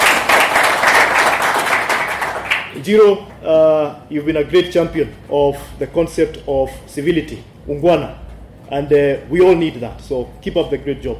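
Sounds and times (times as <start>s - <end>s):
audience applause at a public event: 0.0s - 2.8s
speech: 2.8s - 11.1s.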